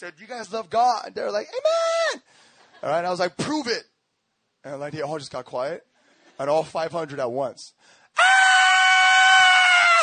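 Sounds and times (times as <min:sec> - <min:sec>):
speech: 0:00.0 - 0:03.9, 0:04.6 - 0:08.4
person screaming imitating children shrieking: 0:08.2 - 0:10.0.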